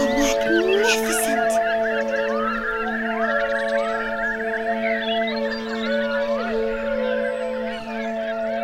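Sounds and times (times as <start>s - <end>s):
large flock of birds of many kinds honking and calling on a beach: 0.0s - 8.6s.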